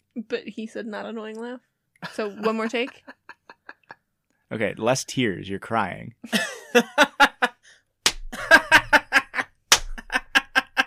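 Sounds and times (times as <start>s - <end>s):
speech: 0.2s - 3.2s, 4.5s - 7.3s
laughter: 2.0s - 4.0s, 6.3s - 7.6s, 8.4s - 10.8s
hand slapping a knee: 8.0s - 8.4s, 9.7s - 10.2s.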